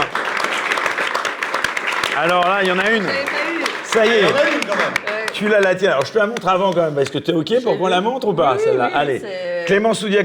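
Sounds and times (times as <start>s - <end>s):
studio audience applauding: 0.0s - 7.2s
speech: 2.2s - 10.2s.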